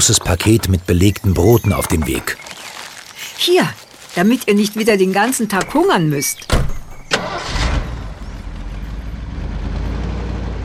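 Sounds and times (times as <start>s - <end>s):
speech: 0.0s - 2.5s, 3.4s - 7.4s
truck carrying a gold-washing plant on its bed starting and idling: 6.5s - 10.6s.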